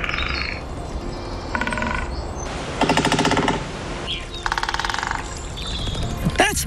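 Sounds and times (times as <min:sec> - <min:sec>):
woodpecker drumming on trees: 0:00.0 - 0:00.6, 0:01.4 - 0:06.0
faint birdsong: 0:00.0 - 0:06.3.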